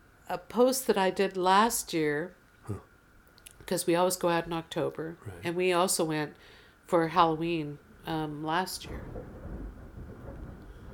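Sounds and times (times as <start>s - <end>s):
speech: 0.3s - 2.9s, 3.7s - 9.3s
thunder rumbling: 8.1s - 10.9s.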